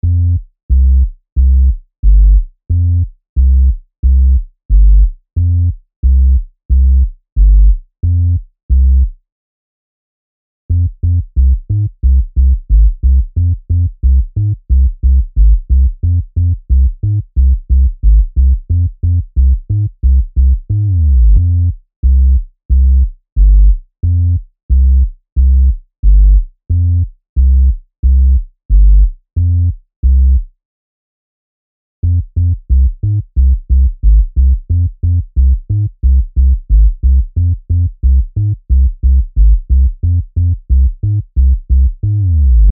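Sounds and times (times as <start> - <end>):
Latin bass melody loop in F minor at 90 BPM: 0.0 - 5.1, 6.0 - 9.1, 10.8 - 30.4, 32.0 - 42.7.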